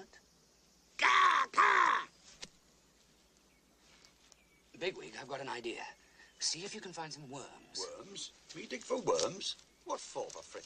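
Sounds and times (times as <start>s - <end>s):
raspy crow-like bird calls: 0.6s - 2.4s, 3.1s - 10.6s
speech: 4.8s - 10.6s.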